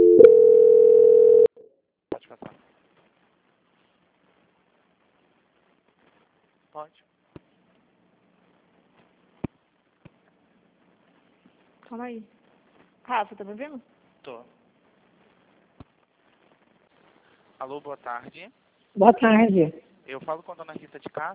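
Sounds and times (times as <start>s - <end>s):
telephone call-transfer tone: 0.0s - 1.6s
speech: 6.8s - 7.2s, 11.9s - 12.4s, 13.1s - 14.6s, 17.6s - 21.3s.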